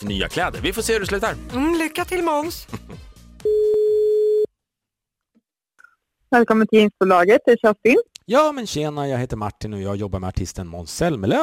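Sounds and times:
speech: 0:00.0 - 0:02.9, 0:06.3 - 0:11.4
outgoing telephone call ringing tone: 0:03.4 - 0:04.5.

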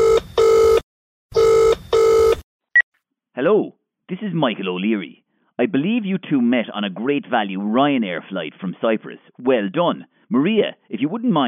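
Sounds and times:
telephone ringing with double-pulse electronic trills: 0:00.0 - 0:00.8, 0:01.4 - 0:02.4
speech: 0:03.4 - 0:11.4.

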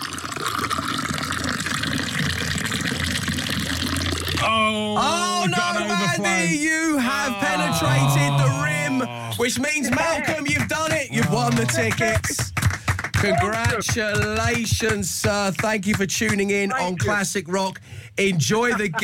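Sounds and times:
liquid pouring in a steady rushing stream: 0:00.0 - 0:04.5
speech: 0:04.5 - 0:08.1, 0:09.0 - 0:12.5, 0:13.2 - 0:19.0
laughter: 0:05.0 - 0:12.6, 0:13.2 - 0:13.9, 0:18.5 - 0:19.0.

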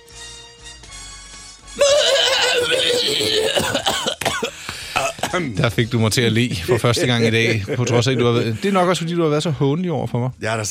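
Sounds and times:
person imitating a horse whinnying: 0:01.8 - 0:03.6
speech: 0:05.4 - 0:10.6
laughter: 0:06.5 - 0:08.9.

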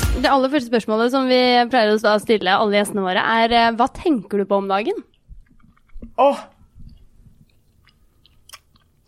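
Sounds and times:
speech: 0:00.2 - 0:05.1, 0:06.1 - 0:06.5
person chewing gummy candy: 0:04.9 - 0:09.0.

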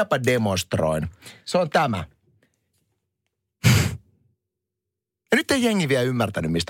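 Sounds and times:
speech: 0:00.0 - 0:02.2, 0:05.3 - 0:06.6
person imitating annoyed huffing of breath: 0:03.6 - 0:04.1.

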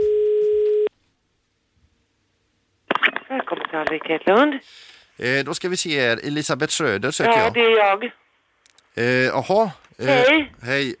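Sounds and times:
telephone ringing tone while placing a call: 0:00.0 - 0:00.9
speech: 0:03.4 - 0:08.2, 0:09.0 - 0:10.9.

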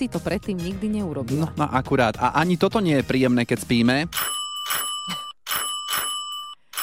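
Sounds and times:
speech: 0:00.0 - 0:05.2
apartment doorbell ringing with metallic clatter: 0:04.2 - 0:06.8.

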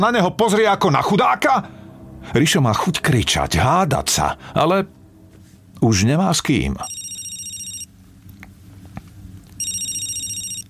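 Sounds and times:
speech: 0:00.0 - 0:05.0, 0:05.8 - 0:07.0
low hum: 0:00.0 - 0:10.6
mobile phone ringing with a bright electronic trill: 0:06.8 - 0:07.9, 0:09.6 - 0:10.6.

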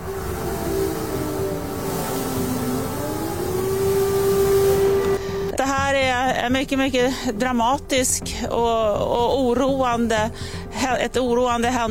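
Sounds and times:
short warbling sound: 0:00.0 - 0:05.2
air raid siren wailing: 0:00.0 - 0:05.6
speech: 0:06.5 - 0:11.9.

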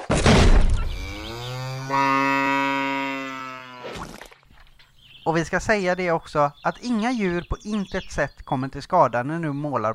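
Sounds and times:
cow mooing: 0:00.9 - 0:04.0
speech: 0:01.9 - 0:02.2, 0:05.3 - 0:09.9.

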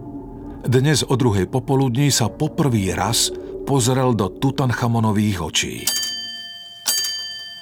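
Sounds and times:
speech: 0:00.6 - 0:06.1
wall clock striking resonant metallic chime: 0:05.8 - 0:07.6.

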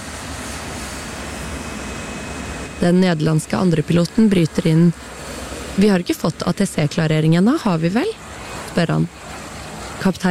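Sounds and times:
airliner jet engines roaring before takeoff, throttle raised and lowered: 0:00.0 - 0:10.2
speech: 0:02.8 - 0:08.2, 0:08.8 - 0:09.2, 0:10.0 - 0:10.2.

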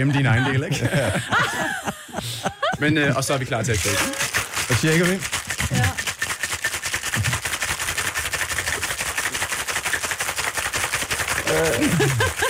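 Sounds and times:
laughter: 0:00.0 - 0:04.2, 0:11.4 - 0:12.4
speech: 0:00.0 - 0:06.0, 0:11.6 - 0:12.3
cocktail shaker being shaken vigorously: 0:03.0 - 0:12.4.

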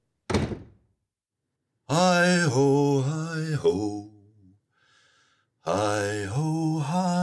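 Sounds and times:
wooden door jerking open with a rattling thunk: 0:00.3 - 0:00.8
speech: 0:01.9 - 0:04.1, 0:05.6 - 0:07.1.

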